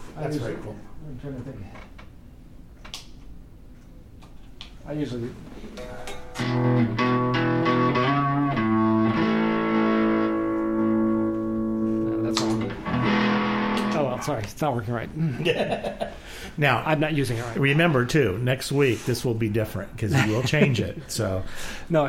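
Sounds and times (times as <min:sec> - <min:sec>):
speech: 0:00.2 - 0:02.0, 0:04.8 - 0:07.0, 0:14.3 - 0:22.0
sustained distorted plucked instrument notes through an effects unit with echo trails: 0:05.8 - 0:14.2
laughter: 0:15.2 - 0:16.2, 0:20.0 - 0:21.1.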